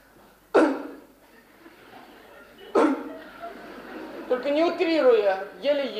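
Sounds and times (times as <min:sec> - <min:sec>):
short dry coughs: 0:00.5 - 0:01.1, 0:02.7 - 0:03.2
laughter: 0:01.3 - 0:04.6
speech: 0:04.4 - 0:05.9.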